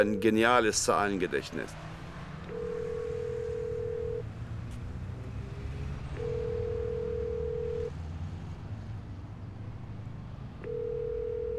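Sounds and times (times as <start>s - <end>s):
telephone ringing tones on the line after a number is dialled: 0.0s - 0.8s, 2.5s - 4.2s, 6.2s - 7.9s, 10.6s - 11.5s
speech: 0.0s - 1.9s.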